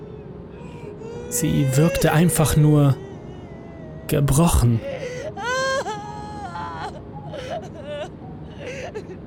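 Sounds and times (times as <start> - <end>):
woman whimpering aboard a passenger plane: 0.6 - 9.2
speech: 1.3 - 3.0, 4.1 - 4.9.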